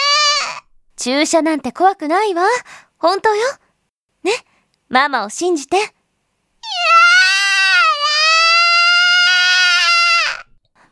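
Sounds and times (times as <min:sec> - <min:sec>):
child wailing: 0:00.0 - 0:00.6, 0:06.6 - 0:10.5
speech: 0:01.0 - 0:03.6, 0:04.2 - 0:06.0.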